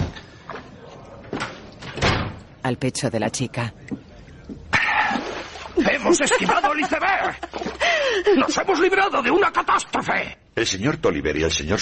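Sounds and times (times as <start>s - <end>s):
door creaking, knocking and closing with a thud: 0.0s - 2.5s
speech: 2.6s - 4.0s, 5.9s - 11.8s
laughter: 5.8s - 9.0s.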